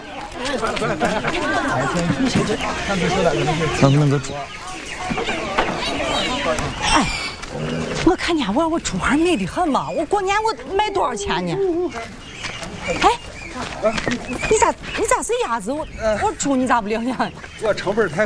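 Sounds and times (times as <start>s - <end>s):
chorus of ducklings and chicks chirping: 0.0s - 8.0s, 8.6s - 18.2s
laughter: 0.4s - 3.8s.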